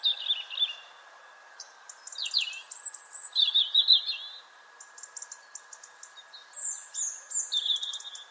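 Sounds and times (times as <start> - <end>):
European robin Erithacus rubecula singing: 0.0 - 8.2
continuous background hum: 0.0 - 8.2.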